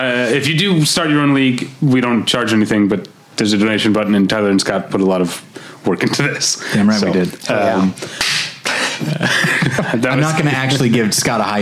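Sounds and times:
speech: 0:00.0 - 0:08.3, 0:09.0 - 0:11.5
person slapping another across the face: 0:08.2 - 0:08.6
laughter: 0:08.7 - 0:10.6.

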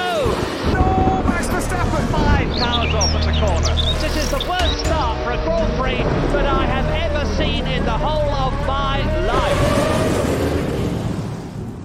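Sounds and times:
deep rumbling in a rain-and-storm-themed bumper jingle: 0:00.2 - 0:11.8
swooping voice-like melodic glides in a bumper jingle: 0:01.9 - 0:09.7.

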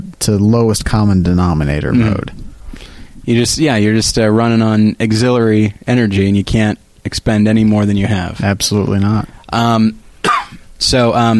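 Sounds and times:
speech: 0:00.0 - 0:02.4, 0:03.2 - 0:10.0, 0:10.8 - 0:11.3
person coughing: 0:02.0 - 0:02.3, 0:10.2 - 0:10.7
drawn-out voiced groan: 0:02.0 - 0:02.4.

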